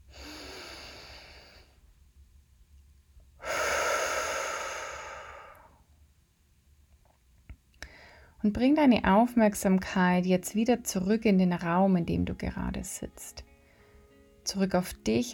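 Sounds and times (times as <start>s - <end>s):
deep breathing in and out during a guided relaxation: 0.0s - 1.9s, 3.4s - 5.9s, 7.8s - 8.4s, 13.6s - 14.2s
speech: 8.4s - 13.5s, 14.5s - 15.3s.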